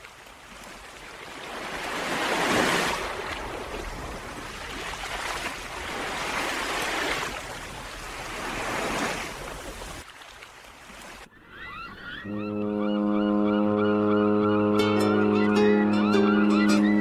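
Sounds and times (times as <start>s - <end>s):
sea and wind noise: 0.0s - 16.9s
ship horn blast: 12.2s - 16.6s.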